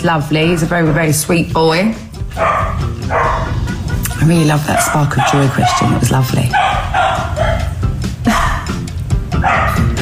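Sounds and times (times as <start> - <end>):
speech: 0.0 - 3.4, 4.2 - 7.7
several dogs barking: 0.4 - 1.4, 2.3 - 8.7, 9.3 - 10.0
dogs yipping: 2.3 - 3.7, 4.4 - 8.6, 9.3 - 10.0.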